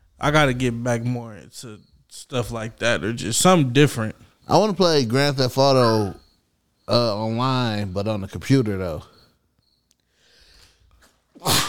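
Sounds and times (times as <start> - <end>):
speech: 0.2 - 6.2, 6.9 - 9.1
faint intake of breath: 10.1 - 10.9
loud sneeze: 11.4 - 11.6.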